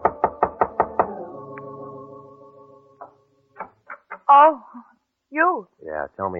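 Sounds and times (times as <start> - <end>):
knocking on a bungalow door: 0.0 - 1.1
speech: 4.3 - 6.3.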